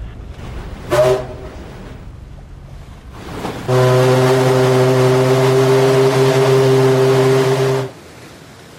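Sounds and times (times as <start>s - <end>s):
low rumble: 0.0s - 7.4s
ship's whistle blasting at departure: 0.9s - 1.5s, 3.7s - 8.0s.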